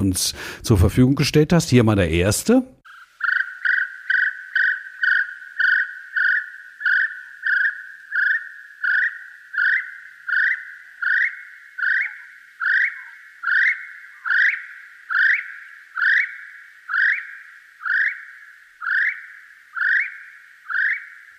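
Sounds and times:
speech: 0:00.0 - 0:02.8
little spotted kiwi shrill whistling calls: 0:02.9 - 0:21.3.

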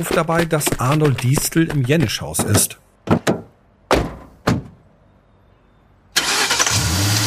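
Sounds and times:
speech: 0:00.0 - 0:02.8
heavy car door thunks: 0:02.5 - 0:04.8
car engine starting and revving as it pulls away through the city: 0:06.2 - 0:07.2.

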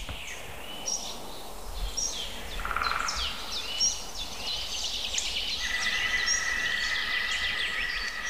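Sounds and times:
outdoor bird chorus with high chirps and tweets: 0:00.0 - 0:08.2
green woodpecker calling: 0:02.0 - 0:08.2.

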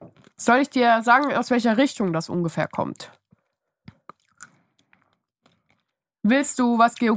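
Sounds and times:
speech: 0:00.4 - 0:03.2, 0:06.2 - 0:07.1
chewing food thoroughly: 0:03.4 - 0:06.0.

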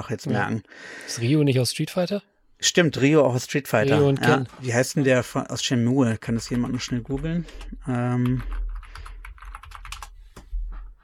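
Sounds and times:
speech: 0:00.0 - 0:08.6
typing on a computer keyboard: 0:06.3 - 0:10.2.

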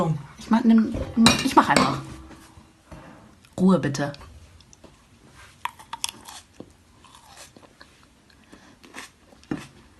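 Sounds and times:
speech: 0:00.1 - 0:02.1, 0:03.6 - 0:04.3
wet smacking and chewing while eating a mandarin: 0:05.6 - 0:09.8.

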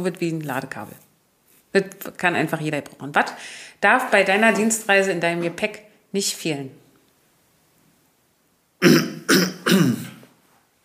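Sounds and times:
speech: 0:00.0 - 0:01.1, 0:01.7 - 0:06.8
harsh guttural throat clearing: 0:08.8 - 0:10.3.

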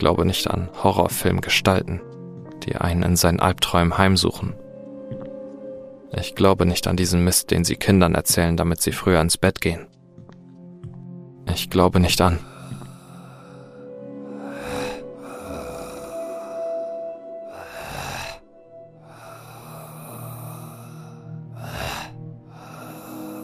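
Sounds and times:
speech: 0:00.0 - 0:04.6, 0:06.1 - 0:10.0, 0:11.5 - 0:12.5
eerie groaning drone: 0:12.4 - 0:23.4.

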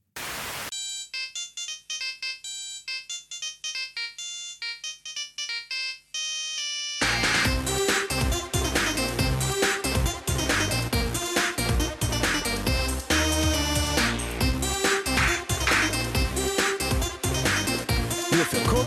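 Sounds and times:
bright synthetic mobile phone ringtone from a TV advert: 0:00.8 - 0:07.6
loud dense electronic music: 0:06.5 - 0:18.8.

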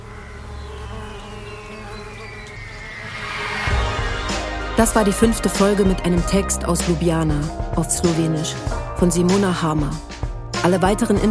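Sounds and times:
bees buzzing with humming wings: 0:00.0 - 0:08.4
speech: 0:04.8 - 0:11.2.

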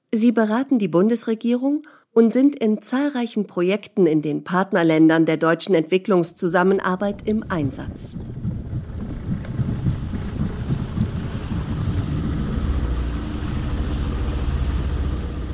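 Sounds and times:
speech: 0:00.1 - 0:08.4
water rushing around the boat hull: 0:07.0 - 0:15.5
wind buffeting the microphone: 0:07.0 - 0:15.5
motorized pirogue boat engine droning: 0:07.1 - 0:15.5.

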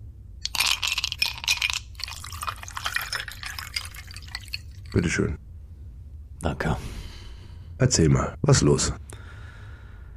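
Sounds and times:
bright clinks of glass: 0:00.4 - 0:05.0
drink pouring into a glass: 0:00.4 - 0:05.0
speech: 0:05.0 - 0:05.4, 0:06.4 - 0:07.0, 0:07.8 - 0:09.1.

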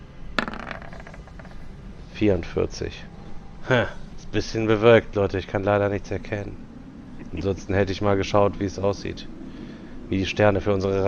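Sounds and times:
dice rolled across a table for a tabletop role-playing game skill check: 0:00.4 - 0:01.7
speech: 0:02.2 - 0:06.6, 0:07.3 - 0:09.4, 0:10.1 - 0:11.0.

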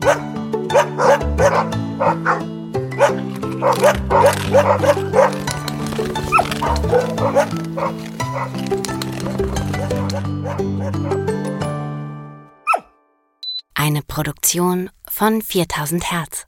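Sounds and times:
speech: 0:00.0 - 0:01.2, 0:04.6 - 0:05.1, 0:06.9 - 0:09.6, 0:14.2 - 0:16.4
dog barking: 0:00.0 - 0:08.6, 0:09.7 - 0:11.2, 0:12.6 - 0:13.0
musical backing: 0:00.0 - 0:12.6.

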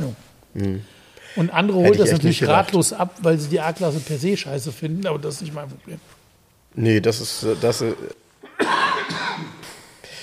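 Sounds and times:
speech: 0:00.1 - 0:06.2, 0:06.8 - 0:08.8
person coughing from the cold: 0:08.4 - 0:10.2.

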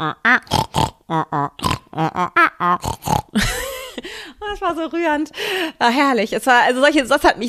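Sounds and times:
speech: 0:00.0 - 0:02.3, 0:04.7 - 0:07.4
person imitating pig grunts and squealing snort: 0:00.0 - 0:03.4.

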